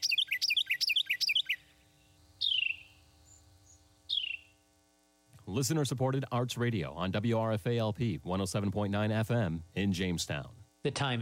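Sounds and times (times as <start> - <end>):
birds chirping and singing: 0.0 - 4.6
faint low hum: 0.0 - 11.2
speech: 5.5 - 11.2.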